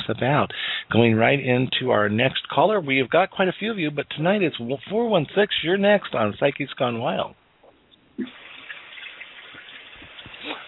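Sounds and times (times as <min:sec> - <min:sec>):
speech: 0:00.1 - 0:07.4, 0:08.2 - 0:08.4
shower water running: 0:08.2 - 0:10.6.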